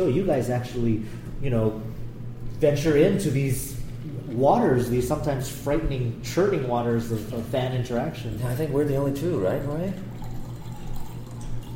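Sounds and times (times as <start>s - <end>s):
speech: 0.0s - 2.0s, 2.6s - 10.1s
water pouring into a glass: 9.5s - 11.7s.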